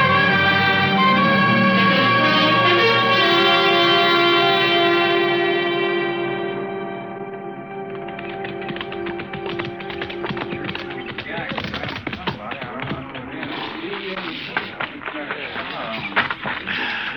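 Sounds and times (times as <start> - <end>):
sustained tone: 0.0 - 11.1
busy noise: 0.0 - 17.1
horse hooves clip-clopping: 8.0 - 17.1.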